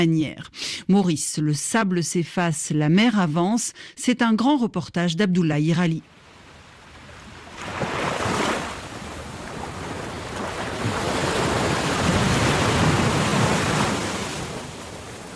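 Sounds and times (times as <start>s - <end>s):
speech: 0.0s - 6.2s
sea waves breaking on a shore of black pebbles at Rivière des Galets in Mauritius: 6.1s - 15.3s.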